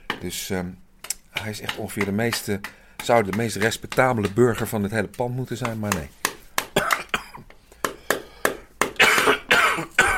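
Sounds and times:
speech: 0.2s - 0.8s, 1.4s - 6.2s
loud harsh coughing fit: 6.8s - 7.5s, 9.0s - 10.1s
short gasps between coughs: 7.6s - 8.8s.

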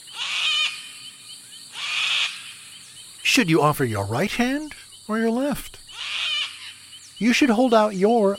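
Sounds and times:
sulfur-crested cockatoo screeching: 0.1s - 0.9s, 1.7s - 2.6s, 5.9s - 6.8s
speech: 3.4s - 5.8s, 7.2s - 8.3s.

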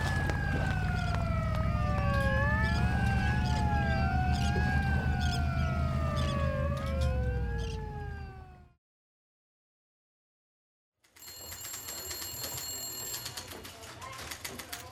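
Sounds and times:
heavy low engine rumble: 0.0s - 8.7s
several police sirens wailing: 0.0s - 8.8s.

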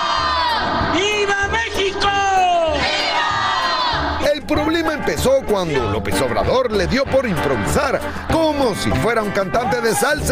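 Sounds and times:
huge outdoor crowd in public square shouting viva in unison: 0.0s - 5.9s
speech: 4.5s - 10.2s.

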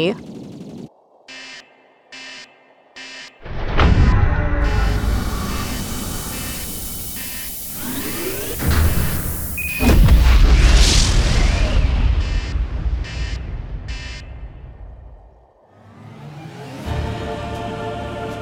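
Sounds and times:
short buzzing bursts: 1.3s - 3.5s, 4.6s - 10.3s
thousands of nuclear space missiles launching from Earth: 3.4s - 15.2s.

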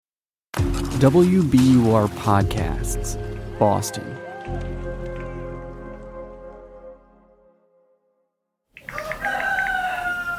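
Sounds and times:
speech: 1.0s - 4.8s
rooster crowing: 8.8s - 10.3s.

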